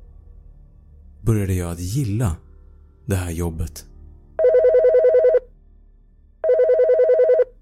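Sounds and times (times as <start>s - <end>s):
speech: 1.3s - 2.5s, 3.1s - 3.9s
corded telephone ringing with rapid warbling trill: 4.4s - 5.5s, 6.4s - 7.5s.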